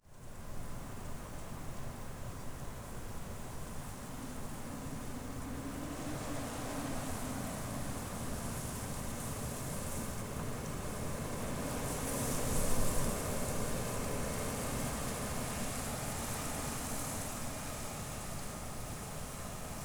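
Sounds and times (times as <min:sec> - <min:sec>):
wind outdoors on a spring day: 0:00.0 - 0:19.8.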